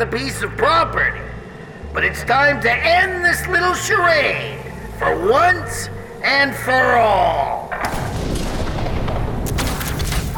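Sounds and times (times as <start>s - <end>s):
speech: 0.0s - 8.2s
missiles exploding in a battle: 7.8s - 10.3s.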